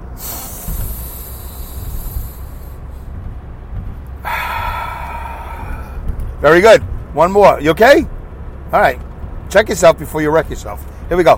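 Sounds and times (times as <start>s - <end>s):
deep breathing in through the nose and out through the mouth: 0.1s - 3.2s, 4.2s - 6.3s
speech: 6.4s - 11.3s.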